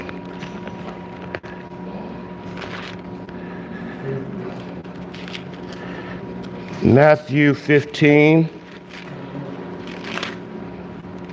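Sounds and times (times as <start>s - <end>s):
book pages being turned by people: 0.0s - 1.7s, 2.4s - 3.4s, 4.5s - 6.9s, 8.6s - 11.3s
steady low hum: 0.0s - 11.3s
speech: 6.8s - 8.6s.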